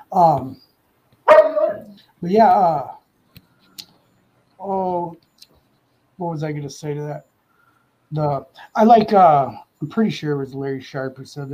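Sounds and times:
speech: 0.1s - 0.6s, 2.2s - 3.0s, 4.6s - 5.2s, 6.2s - 7.3s, 8.1s - 11.5s
dog barking: 1.3s - 2.0s.

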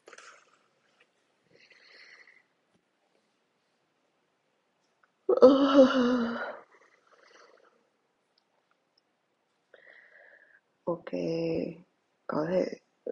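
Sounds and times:
person yawning: 5.3s - 6.6s
speech: 5.4s - 6.3s, 11.1s - 12.8s.

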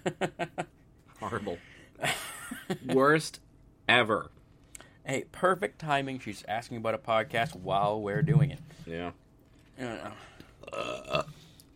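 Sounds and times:
speech: 0.0s - 0.5s, 1.3s - 2.2s, 2.9s - 4.4s, 5.1s - 9.2s, 9.8s - 11.2s
loud burps: 10.6s - 11.4s.

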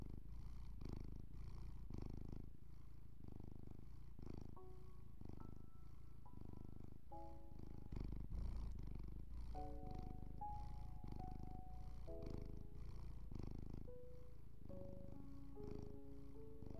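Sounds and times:
domestic cat purring: 0.0s - 16.7s
soft calming music with sustained tones: 4.5s - 16.7s.

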